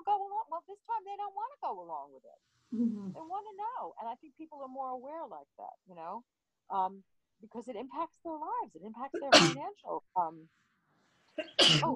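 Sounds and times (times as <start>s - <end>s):
speech: 1.1s - 10.7s, 11.4s - 11.9s
person sneezing: 11.4s - 11.9s.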